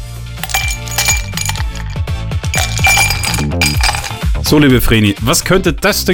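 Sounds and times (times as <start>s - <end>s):
ice cubes tumbling into a glass: 0.4s - 4.2s
speech: 4.5s - 6.1s.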